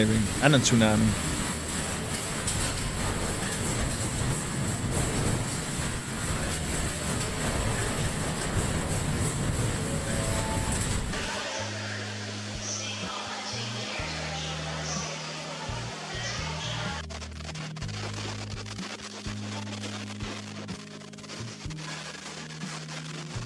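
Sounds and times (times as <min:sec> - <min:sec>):
speech: 0:00.0 - 0:01.3
metro train rumbling along the rails: 0:00.0 - 0:11.2
quieter mechanical hum of the metro train: 0:00.0 - 0:23.4.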